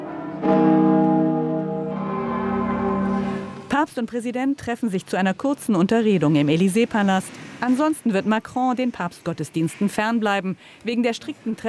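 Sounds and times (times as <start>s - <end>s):
church bells ringing: 0.0s - 3.8s
speech: 3.8s - 11.6s.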